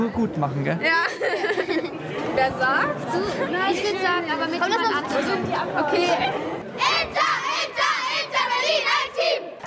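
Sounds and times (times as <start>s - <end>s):
speech: 0.1s - 1.6s, 2.4s - 6.9s
laughter: 0.9s - 2.3s
girls' football club team shouting rhythmic battle cry in unison in Berlin: 6.8s - 9.5s.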